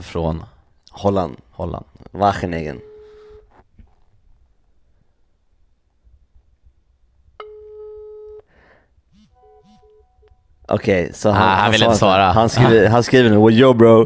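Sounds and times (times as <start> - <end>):
speech: 0.0 - 2.9, 10.7 - 14.0
messaging app call ringing tone: 2.8 - 3.5, 7.4 - 8.5, 9.2 - 10.5.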